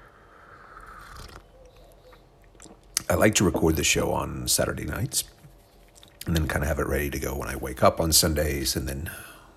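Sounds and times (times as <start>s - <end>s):
person sipping coffee: 0.4s - 3.1s
person swallowing coffee: 0.8s - 1.5s
speech: 3.1s - 5.4s, 6.3s - 9.3s.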